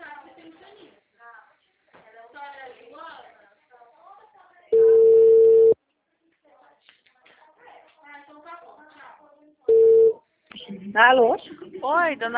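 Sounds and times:
telephone busy signal after a dropped call: 0:04.8 - 0:05.8, 0:09.7 - 0:10.2
speech: 0:10.9 - 0:12.3.

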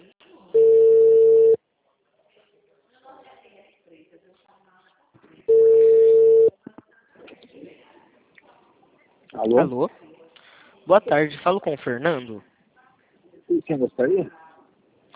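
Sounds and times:
faint scattered noise: 0:00.0 - 0:15.1
ringback tone of an outgoing phone call: 0:00.6 - 0:01.6, 0:05.5 - 0:06.5
speech: 0:09.4 - 0:10.0, 0:10.9 - 0:12.5, 0:13.6 - 0:14.4.

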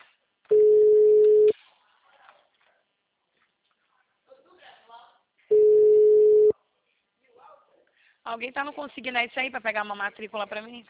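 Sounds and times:
telephone ringback tone while a call is being placed: 0:00.5 - 0:01.5, 0:05.5 - 0:06.5
speech: 0:08.3 - 0:10.8.

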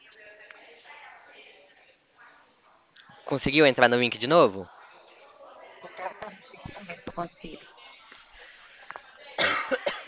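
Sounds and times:
speech: 0:03.3 - 0:04.8, 0:07.2 - 0:07.7
dry hacking coughing: 0:09.4 - 0:10.0.

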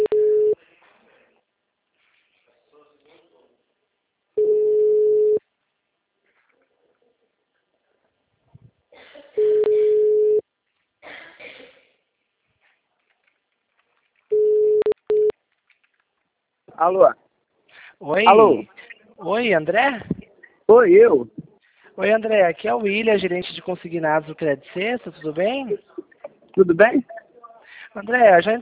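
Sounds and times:
outgoing telephone call ringback tone: 0:00.0 - 0:00.6, 0:04.4 - 0:05.4, 0:09.4 - 0:10.4, 0:14.3 - 0:15.3
speech: 0:16.8 - 0:17.2, 0:18.0 - 0:20.1, 0:20.7 - 0:21.4, 0:22.0 - 0:26.0, 0:26.6 - 0:27.1, 0:27.9 - 0:28.6.

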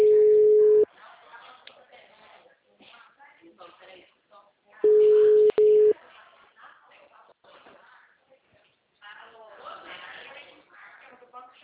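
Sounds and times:
steady mid-pitched electronic telephone call beep: 0:00.0 - 0:00.8, 0:04.8 - 0:06.0
people talking quietly: 0:00.0 - 0:11.6.

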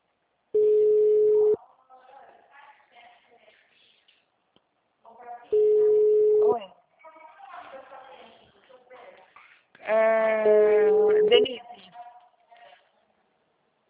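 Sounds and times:
telephone ringing tone on a call line: 0:00.6 - 0:01.6, 0:05.6 - 0:06.6
person talking: 0:05.5 - 0:06.7, 0:09.8 - 0:12.8.

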